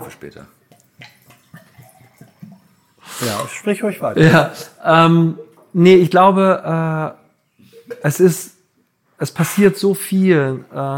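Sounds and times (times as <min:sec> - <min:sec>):
speech: 0:00.0 - 0:00.6, 0:03.2 - 0:07.2, 0:07.9 - 0:08.5, 0:09.2 - 0:10.9
water glugging from fish-shaped jug while pouring: 0:00.6 - 0:03.6.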